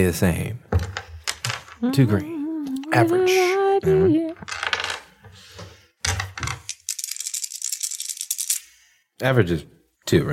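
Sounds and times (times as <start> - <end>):
speech: 0.0 - 0.9, 1.8 - 2.3, 2.9 - 4.6, 9.2 - 10.3
short vocal sound: 1.8 - 4.4
dice clattering across a hard tabletop: 4.4 - 5.1, 6.0 - 8.6.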